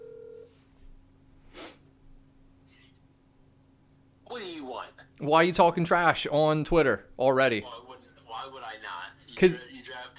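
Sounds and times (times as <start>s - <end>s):
outgoing phone call short steady tone: 0.0s - 0.5s
speech: 5.2s - 7.8s, 9.4s - 9.7s.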